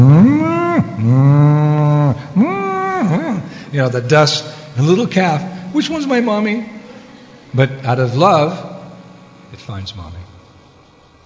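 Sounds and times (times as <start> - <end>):
cows mooing in a herd: 0.0 - 3.6
speech: 3.8 - 6.8, 7.5 - 8.7, 9.5 - 10.3.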